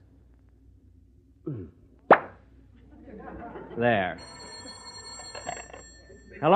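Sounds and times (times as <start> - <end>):
bottle of brandy being opened with a pop: 2.1 - 2.4
laughter: 2.8 - 6.5
speech: 3.8 - 4.4, 6.4 - 6.5.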